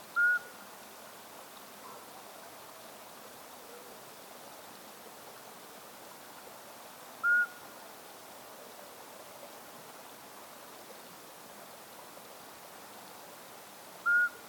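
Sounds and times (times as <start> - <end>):
Iberian midwife toad Alytes cisternasii calling: 0.2 - 0.5, 7.2 - 7.6, 14.1 - 14.4.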